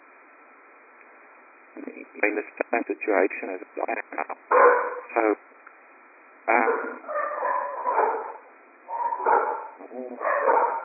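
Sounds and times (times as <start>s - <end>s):
speech: 1.8s - 5.6s, 9.9s - 10.8s
excited dogs barking and yipping: 4.5s - 5.1s, 6.6s - 10.8s.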